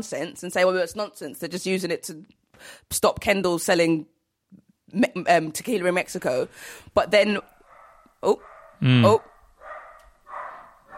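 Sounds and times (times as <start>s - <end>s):
speech: 0.0s - 7.5s, 8.2s - 9.3s
dog barking with a short yap: 7.5s - 10.9s
person murmuring brief interjections: 8.8s - 9.2s.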